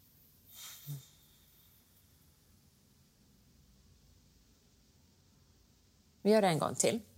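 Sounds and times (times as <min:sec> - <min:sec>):
deep exhalation during a breathing exercise: 0:00.5 - 0:02.3
speech: 0:06.2 - 0:07.1.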